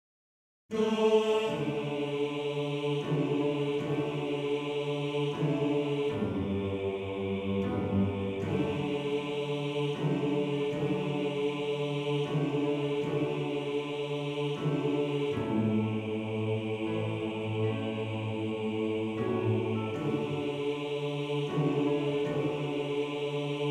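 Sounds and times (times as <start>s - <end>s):
male choir bass section singing: 0.7s - 23.6s.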